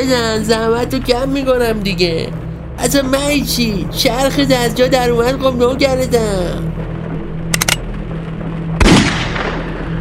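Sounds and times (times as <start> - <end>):
speech: 0.0 - 6.8
steady low hum: 0.0 - 9.9
gunshot sound effect cracks: 8.8 - 9.6
heavier booming gunshot with lingering rumble: 8.8 - 9.9.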